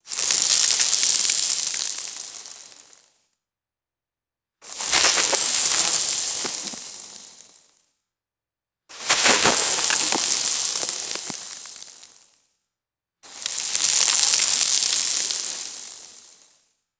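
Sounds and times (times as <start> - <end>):
small gravel falling on dry leaves: 0.1 - 3.0, 4.6 - 7.6, 8.9 - 12.2, 13.3 - 16.5.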